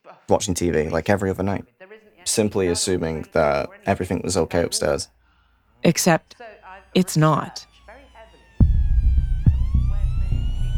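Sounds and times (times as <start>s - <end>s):
speech: 0.3s - 5.2s, 5.8s - 7.7s
police car siren wailing: 5.9s - 10.7s
deep thudding low-end pulses: 8.6s - 10.7s.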